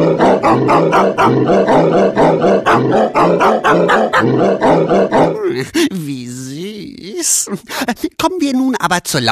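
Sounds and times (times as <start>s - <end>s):
pitched dog barks played like a tune on a musical instrument: 0.0s - 5.4s
speech: 0.0s - 9.3s.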